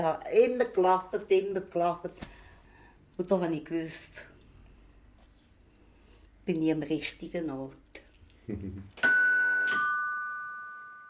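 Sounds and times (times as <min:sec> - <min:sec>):
speech: 0:00.0 - 0:02.4, 0:03.2 - 0:04.3, 0:06.5 - 0:07.8, 0:08.5 - 0:09.2
person murmuring: 0:08.4 - 0:08.9
doorbell two-note ding-dong chime: 0:09.0 - 0:11.0.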